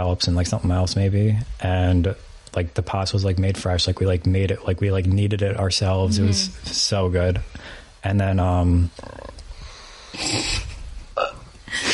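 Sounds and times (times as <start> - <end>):
speech: 0.0 - 9.4
person burping after drinking Prosecco: 11.2 - 11.5.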